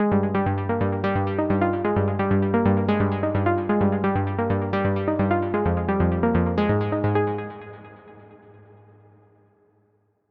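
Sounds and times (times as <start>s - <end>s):
techno pluck melody: 0.1s - 8.0s.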